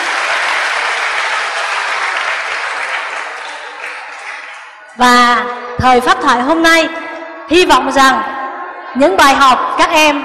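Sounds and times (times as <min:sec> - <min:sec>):
audience applause: 0:00.0 - 0:04.9
speech: 0:05.0 - 0:08.3, 0:08.9 - 0:10.2.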